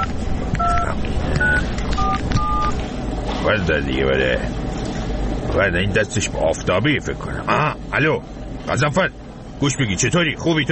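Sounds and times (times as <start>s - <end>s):
telephone keypad dialing tones from a phone call being placed: 0.0s - 2.8s
constant loud noise: 0.0s - 10.6s
speech: 3.4s - 4.6s, 5.5s - 10.6s.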